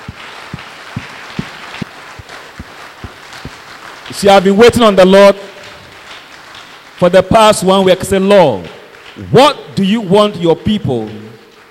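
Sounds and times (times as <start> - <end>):
room noise: 0.0 - 7.2
crowd clapping in rhythm: 0.0 - 11.6
speech: 4.2 - 5.4, 7.0 - 11.2.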